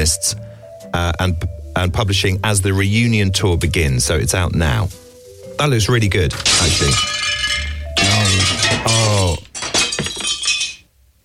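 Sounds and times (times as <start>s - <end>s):
speech: 0.0s - 5.0s, 5.6s - 7.6s, 8.2s - 9.4s
glass being broken and shattering: 6.3s - 10.9s
scattering glass debris: 6.3s - 10.9s.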